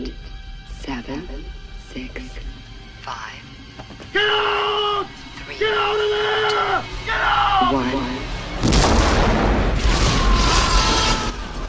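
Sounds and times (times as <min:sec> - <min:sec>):
speech: 0:00.8 - 0:08.3
crackling debris: 0:08.6 - 0:11.6
explosions ripping apart a starship bridge: 0:08.6 - 0:11.6.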